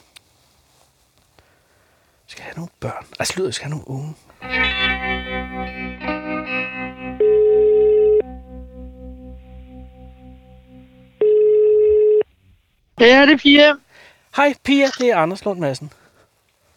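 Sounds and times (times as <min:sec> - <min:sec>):
speech: 0:02.4 - 0:04.9, 0:13.0 - 0:13.8, 0:14.4 - 0:16.0
soft music: 0:04.4 - 0:12.4
outgoing call ringback tone beeps: 0:07.2 - 0:08.2, 0:11.2 - 0:12.3.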